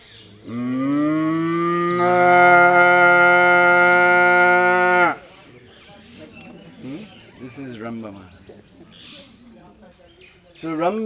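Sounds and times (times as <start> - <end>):
speech: 0.4 - 0.6, 10.8 - 11.0
cow lowing: 0.5 - 5.2.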